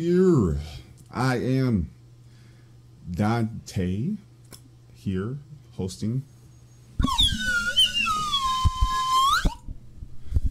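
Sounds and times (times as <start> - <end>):
speech: 0.0 - 2.0, 3.1 - 4.3, 5.0 - 6.3
slide whistle: 7.0 - 9.7.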